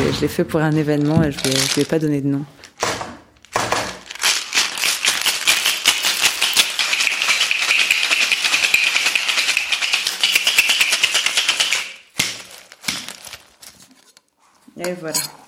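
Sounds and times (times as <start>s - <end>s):
speech: 0.1s - 2.6s, 15.0s - 15.4s
ice rattling in cocktail shaker mixing a mezcal cocktail: 0.8s - 2.1s, 4.0s - 13.4s.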